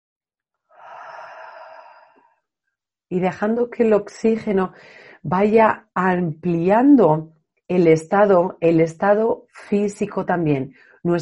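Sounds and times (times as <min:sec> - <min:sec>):
slow deep inhaling breath during a guided breathing session: 0:00.7 - 0:02.4
speech: 0:03.1 - 0:11.2.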